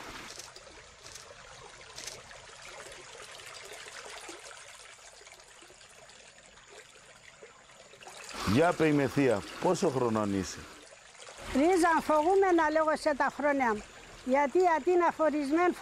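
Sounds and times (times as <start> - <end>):
water poured into a glass: 2.3 - 12.2
speech: 8.5 - 10.8, 11.6 - 15.7.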